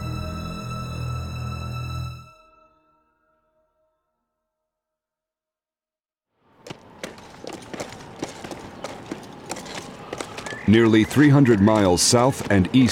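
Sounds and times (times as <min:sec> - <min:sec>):
hybrid pack horses' hooves on rocky terrain: 0:06.6 - 0:12.9
speech: 0:10.7 - 0:12.9.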